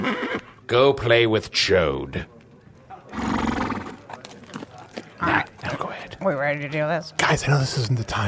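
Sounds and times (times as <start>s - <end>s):
horse neighing: 0.0s - 0.6s, 3.1s - 4.0s
speech: 0.0s - 2.4s, 6.2s - 8.2s
horse huffing: 3.1s - 4.0s.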